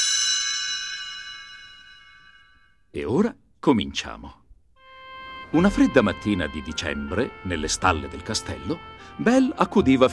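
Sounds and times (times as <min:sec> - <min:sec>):
small bell ringing to signal a page turn in a children's storybook: 0:00.0 - 0:02.8
speech: 0:02.9 - 0:04.4, 0:05.5 - 0:10.1.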